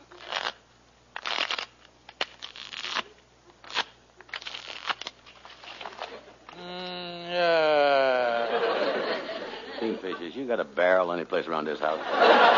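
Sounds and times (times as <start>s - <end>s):
deck of playing cards being shuffled: 0.1s - 0.6s, 1.2s - 6.6s
laughter: 7.3s - 10.4s, 11.9s - 12.5s
speech: 10.2s - 12.5s.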